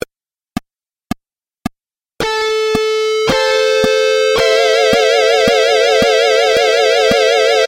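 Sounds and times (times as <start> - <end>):
layered harmony: 2.2 - 7.6.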